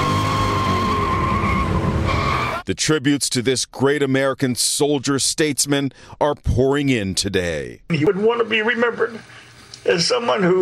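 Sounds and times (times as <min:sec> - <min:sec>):
car engines roaring in a drag race: 0:00.0 - 0:02.6
tires skidding in a drag race: 0:00.0 - 0:02.6
speech: 0:02.7 - 0:10.6.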